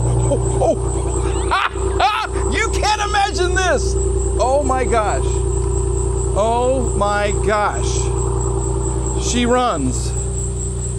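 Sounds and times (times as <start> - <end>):
laughter: 0.0 - 3.6
old rewired car engine idling with exhaust drone: 0.0 - 10.9
person exclaiming excitedly: 1.5 - 5.0
speech: 3.7 - 5.4, 6.4 - 8.2, 9.2 - 10.1.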